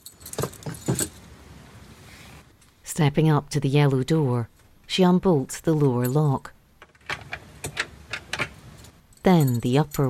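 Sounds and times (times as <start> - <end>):
set of keys jangling: 0.0 - 1.3, 7.1 - 10.0
speech: 3.0 - 6.6, 9.2 - 10.0.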